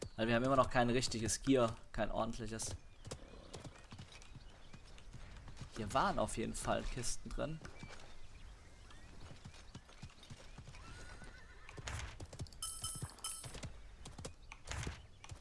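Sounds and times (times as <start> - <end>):
horse hooves clip-clopping as a horse is ridden in a video game: 0.0 - 15.3
speech: 0.2 - 3.2, 5.8 - 8.0
horse whinny in a video game: 10.6 - 12.2.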